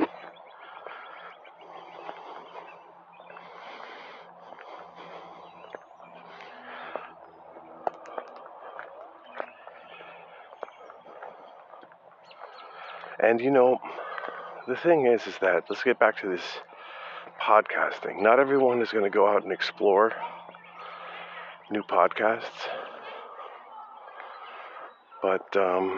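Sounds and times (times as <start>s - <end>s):
birds calling outdoors on a slightly cloudy day: 0.0s - 25.9s
speech: 13.2s - 14.0s, 14.7s - 16.7s, 17.5s - 20.4s, 21.7s - 22.8s, 25.2s - 25.9s.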